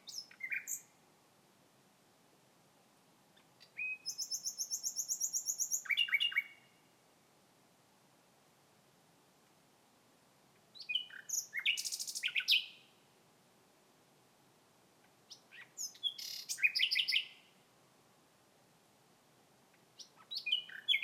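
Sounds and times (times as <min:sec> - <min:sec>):
common nightingale song: 0:00.0 - 0:01.2, 0:03.2 - 0:07.1, 0:10.5 - 0:13.2, 0:15.0 - 0:17.8, 0:19.6 - 0:21.0.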